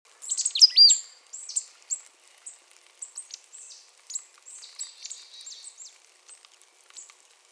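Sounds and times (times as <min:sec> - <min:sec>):
marsh tit Poecile palustris calling with sharp downslurred and buzzy notes: 0:00.2 - 0:01.6.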